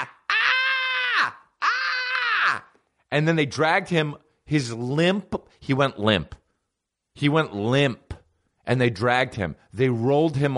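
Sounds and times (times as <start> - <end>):
man imitating a scream: 0.0 - 2.8
speech: 3.1 - 6.4, 7.2 - 8.0, 8.7 - 10.5.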